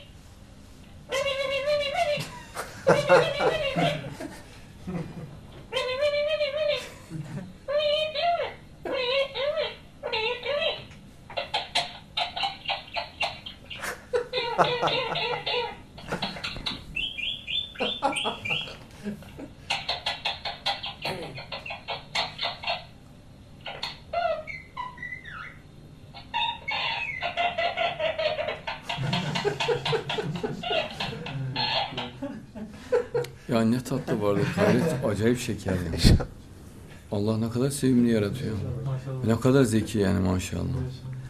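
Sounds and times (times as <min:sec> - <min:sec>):
pet bird chattering while being petted: 0:01.1 - 0:02.2, 0:02.8 - 0:04.1, 0:07.7 - 0:18.8, 0:19.7 - 0:23.0, 0:23.6 - 0:32.3
laughter: 0:02.0 - 0:05.4, 0:06.8 - 0:07.6, 0:13.8 - 0:16.6, 0:17.8 - 0:19.6, 0:28.9 - 0:36.3
speech: 0:02.9 - 0:03.4, 0:35.2 - 0:36.4, 0:37.2 - 0:41.0.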